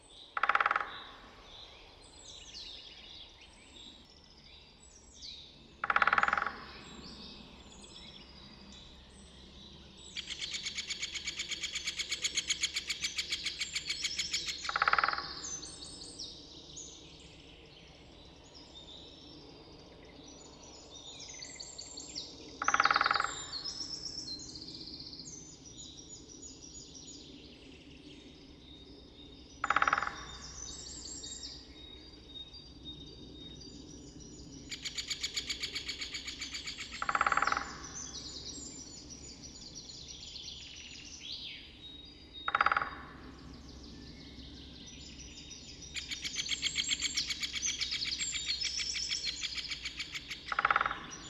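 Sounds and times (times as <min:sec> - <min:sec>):
great spotted woodpecker: 0:00.1 - 0:02.8, 0:05.7 - 0:07.3, 0:10.1 - 0:16.1, 0:21.3 - 0:24.4, 0:29.6 - 0:31.4, 0:34.7 - 0:39.8, 0:42.3 - 0:43.5, 0:45.0 - 0:51.2.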